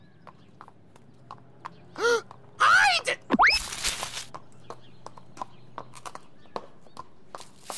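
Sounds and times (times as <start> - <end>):
horse hooves clip-clopping: 0.0 - 2.4, 3.9 - 7.7
person calling out: 2.0 - 3.7.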